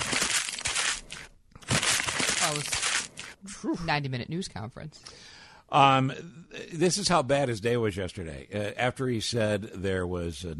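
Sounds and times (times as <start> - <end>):
sheet of paper being crumpled: 0.0 - 3.4
speech: 3.6 - 10.5.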